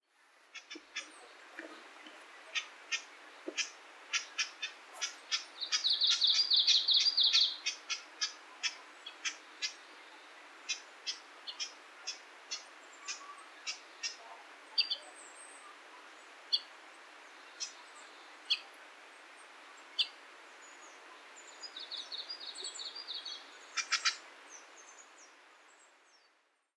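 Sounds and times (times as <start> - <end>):
wild Japanese bush warbler giving dry clicking calls: 0.5 - 9.8, 10.6 - 14.2, 23.2 - 24.2.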